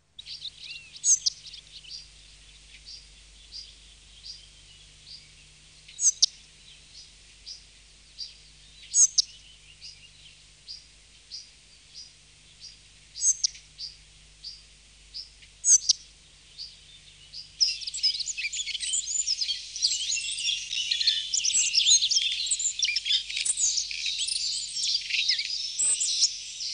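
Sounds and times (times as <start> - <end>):
spotted flycatcher calling: 0.2 - 2.1, 5.9 - 6.4, 8.9 - 9.4, 13.2 - 13.6, 15.2 - 16.0, 16.6 - 26.7.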